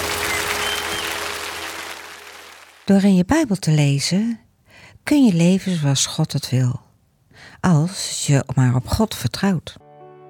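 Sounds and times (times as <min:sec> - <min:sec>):
audience applauding: 0:00.0 - 0:02.9
speech: 0:02.9 - 0:04.4, 0:05.0 - 0:06.8, 0:07.4 - 0:09.8.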